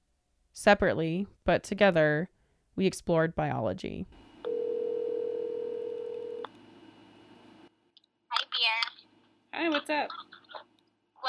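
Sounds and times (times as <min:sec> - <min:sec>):
speech: 0:00.6 - 0:04.2, 0:09.9 - 0:10.4
telephone dial tone: 0:04.5 - 0:06.5.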